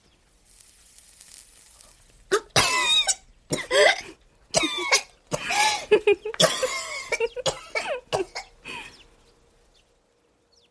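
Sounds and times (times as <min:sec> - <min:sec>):
harsh coughing fit from cigarette smoke: 0:02.3 - 0:08.6.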